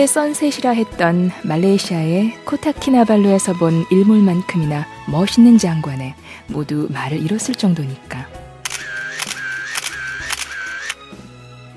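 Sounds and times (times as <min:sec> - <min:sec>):
speech: 0:00.0 - 0:08.4
camera shutter clicking: 0:08.7 - 0:11.0.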